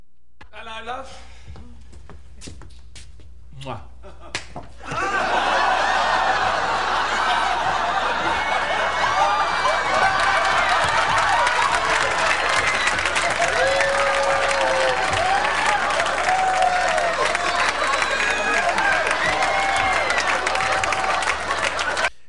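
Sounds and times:
speech: 0.6s - 1.6s, 3.6s - 5.4s
studio audience laughter: 4.8s - 13.2s
studio audience screaming: 4.8s - 22.1s.

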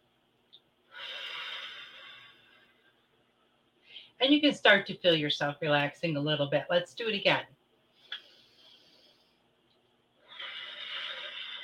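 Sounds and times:
deep breath in and out: 0.9s - 3.0s, 7.9s - 9.5s, 10.2s - 11.6s
speech: 4.2s - 7.6s.

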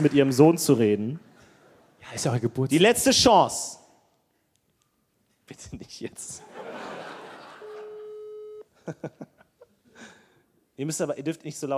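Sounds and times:
speech: 0.0s - 1.3s, 2.0s - 3.8s, 5.5s - 6.9s, 8.8s - 9.4s, 10.8s - 11.7s
laughter: 6.4s - 9.8s
telephone call ringing out unanswered: 7.6s - 8.6s.

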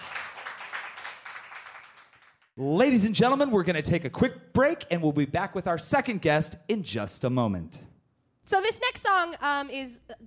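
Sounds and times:
round of applause from a group: 0.0s - 2.6s
speech: 2.6s - 7.9s, 8.5s - 10.2s.

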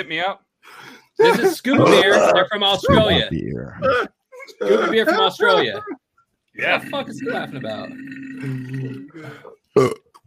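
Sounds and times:
speech: 0.0s - 6.0s, 6.6s - 10.0s
laughter: 1.2s - 3.2s, 3.9s - 6.0s
long low croaking burp: 1.8s - 4.1s, 6.6s - 9.2s, 9.8s - 10.2s.

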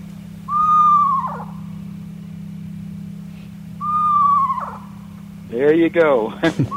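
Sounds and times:
screech owl calling: 0.0s - 5.7s, 6.5s - 6.7s
steady low hum: 0.0s - 6.7s
speech: 5.6s - 6.7s.

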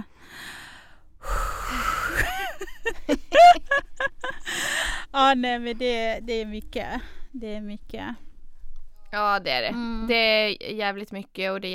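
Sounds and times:
two people breathing deeply together: 0.0s - 2.2s, 4.4s - 5.2s
laughter: 2.1s - 4.4s
speech: 5.2s - 8.3s, 9.1s - 11.7s.

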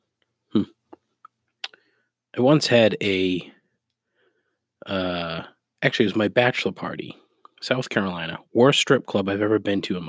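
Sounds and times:
short low burp: 0.5s - 0.8s
speech: 0.5s - 0.8s, 2.4s - 3.6s, 4.9s - 5.2s, 5.8s - 10.0s
faint mouth clicks: 0.6s - 1.8s.

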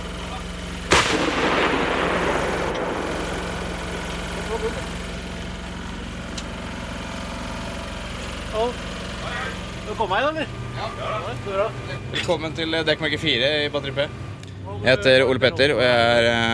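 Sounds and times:
steady low engine drone: 0.0s - 16.5s
long rumbling echo of artillery blast: 0.7s - 7.8s
vehicle-mounted artillery gun firing a live round at a military camp: 0.9s - 5.0s
speech: 4.6s - 5.0s, 8.6s - 8.9s, 10.0s - 14.2s, 14.8s - 16.5s.

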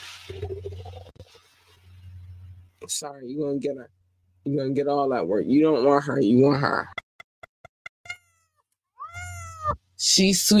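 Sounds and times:
speech: 2.9s - 7.0s, 10.1s - 10.5s
cat meowing: 8.0s - 9.8s.

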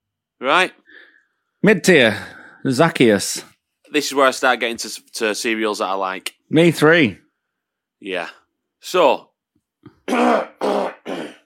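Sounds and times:
speech: 0.4s - 0.8s, 1.6s - 7.2s, 8.0s - 10.8s
person clearing throat with harsh raspy bursts: 9.9s - 11.4s
faint short grunt: 10.0s - 11.4s.

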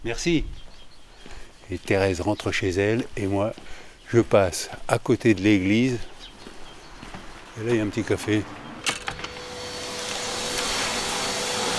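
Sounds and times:
speech: 0.0s - 0.7s, 1.7s - 6.1s, 7.6s - 8.6s
vacuum cleaner running: 9.1s - 11.7s.

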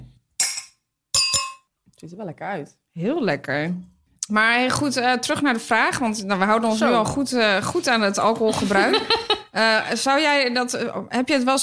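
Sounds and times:
glasses clinking in a New Year toast: 0.4s - 1.7s
speech: 2.0s - 11.6s
laughter: 8.2s - 9.6s.

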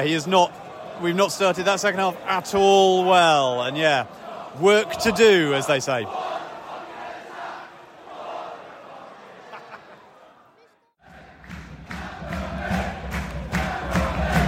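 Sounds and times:
speech: 0.0s - 6.3s
large football crowd chanting and roaring at a match: 0.0s - 14.4s
laughter: 9.2s - 10.8s
football crowd clapping: 11.0s - 14.4s.

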